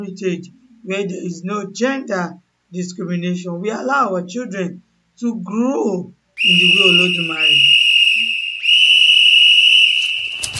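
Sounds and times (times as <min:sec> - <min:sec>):
speech: 0:00.0 - 0:07.8
loud sustained shrill whistle blast: 0:06.4 - 0:10.5
short rustle of noise: 0:10.3 - 0:10.5.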